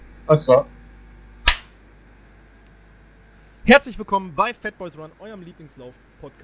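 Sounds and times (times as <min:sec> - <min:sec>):
speech: 0:00.3 - 0:00.8, 0:03.7 - 0:06.4
single sharp hand clap as editing sync marker: 0:01.5 - 0:01.7.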